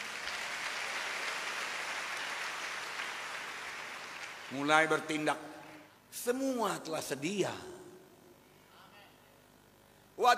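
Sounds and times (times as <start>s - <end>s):
large crowd clapping loudly: 0.0s - 5.8s
speech: 4.5s - 5.5s, 6.1s - 7.7s, 10.2s - 10.3s.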